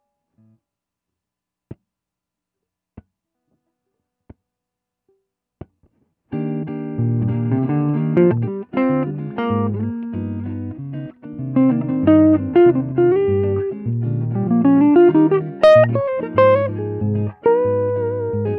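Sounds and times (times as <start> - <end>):
Telecaster electric guitar solo: 6.4 - 18.5.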